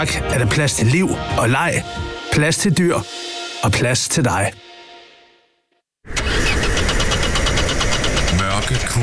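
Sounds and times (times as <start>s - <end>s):
speech: 0.0s - 4.6s
car engine cranking and struggling to start: 6.1s - 9.0s.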